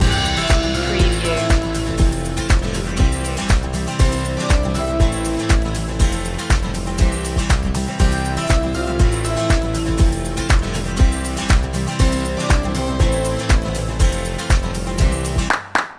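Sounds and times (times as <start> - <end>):
uplifting acoustic guitar loop: 0.0 - 15.8.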